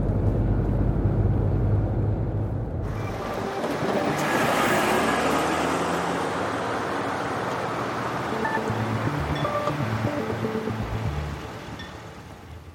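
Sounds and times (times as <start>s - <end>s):
car driving past with low engine rumble and road noise: 0.0s - 11.8s.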